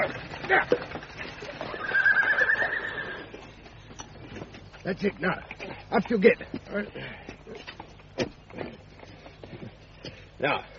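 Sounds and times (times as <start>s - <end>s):
speech: 0.0s - 0.8s, 4.8s - 7.3s, 10.4s - 10.7s
clattering horse hooves: 0.0s - 10.7s
horse whinnying: 1.5s - 3.4s.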